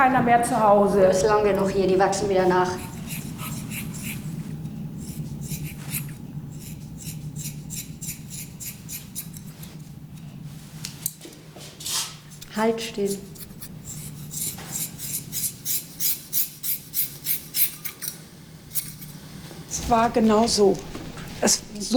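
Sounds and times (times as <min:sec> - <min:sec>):
speech: 0:00.0 - 0:02.9, 0:12.6 - 0:13.4, 0:19.9 - 0:21.9
low hum: 0:00.0 - 0:21.9
scissors snipping and scraping through hair: 0:02.7 - 0:10.2, 0:12.3 - 0:19.1.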